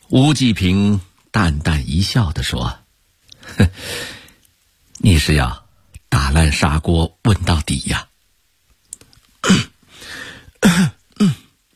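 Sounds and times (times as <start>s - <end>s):
speech: 0.1s - 2.8s, 3.5s - 4.2s, 5.0s - 5.6s, 6.2s - 8.1s, 10.7s - 11.4s
man coughing lightly to clear phlegm: 9.4s - 9.8s, 10.6s - 11.5s.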